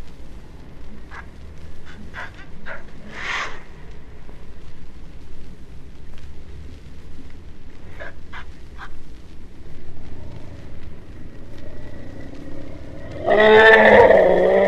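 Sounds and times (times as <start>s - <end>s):
low background noise: 0.0s - 14.6s
Asian elephant trumpeting: 1.9s - 3.6s, 13.1s - 14.6s.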